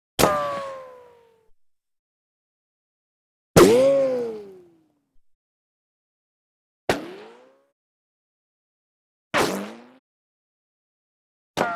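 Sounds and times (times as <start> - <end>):
bullet ricochets: 0.2 - 1.0, 3.6 - 4.4, 11.6 - 11.7.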